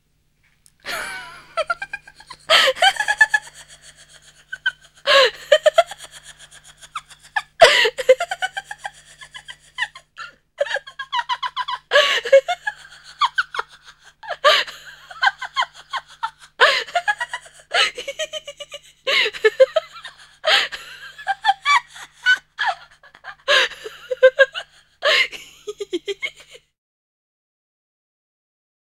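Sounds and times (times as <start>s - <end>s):
squeaky laugh: 0.9s - 26.7s.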